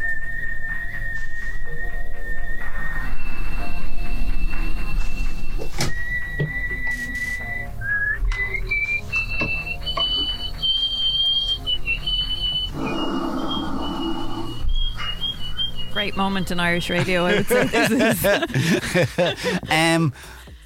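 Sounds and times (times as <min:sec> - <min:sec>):
woman's world-record loudest nose whistle: 0:00.0 - 0:16.3
breathy noise: 0:12.7 - 0:14.7
speech: 0:16.0 - 0:20.4
laughter: 0:16.8 - 0:20.2.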